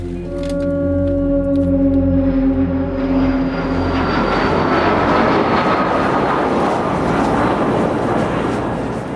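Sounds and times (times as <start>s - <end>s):
airplane engines spooling up for takeoff: 0.0s - 9.1s.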